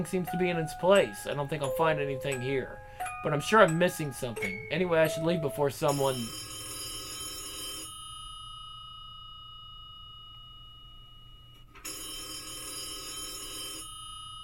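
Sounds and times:
speech: 0:00.0 - 0:06.5
telephone ringing with bright buzzy trilling: 0:00.0 - 0:08.8, 0:10.4 - 0:14.4.

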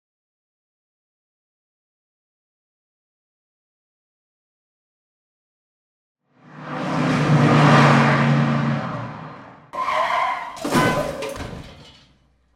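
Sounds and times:
car roaring and skidding while recklessly overtaking: 0:06.3 - 0:11.9
car crash of crunching, clattering impacts after reckless overtaking: 0:09.8 - 0:12.4.

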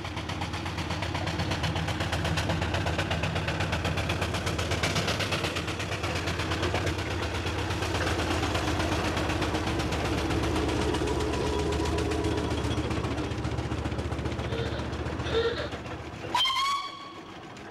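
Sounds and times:
heavy coal wagons rumbling and rattling: 0:00.0 - 0:17.6
steam locomotive chuffing while hauling heavy coal wagons uphill: 0:00.0 - 0:17.6
short sharp steam locomotive whistle: 0:16.4 - 0:17.1.

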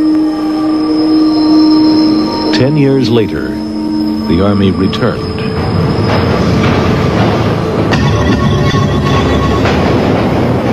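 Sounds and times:
New York City subway train rolling past: 0:00.0 - 0:10.7
speech: 0:02.6 - 0:03.7, 0:04.3 - 0:05.4
subway train wheels clacking over the track: 0:05.4 - 0:10.7.

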